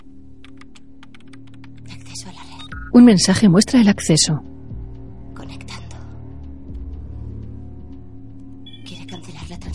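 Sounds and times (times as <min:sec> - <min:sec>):
typing on a computer keyboard: 0:00.0 - 0:02.9
low steady hum: 0:00.0 - 0:09.7
speech: 0:02.2 - 0:04.5.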